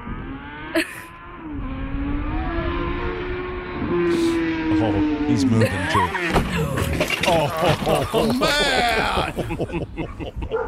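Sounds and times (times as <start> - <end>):
motorcycle engine humming along a road: 0.0 - 10.6
speech: 0.7 - 1.0, 5.3 - 10.6
laughter: 5.4 - 10.6.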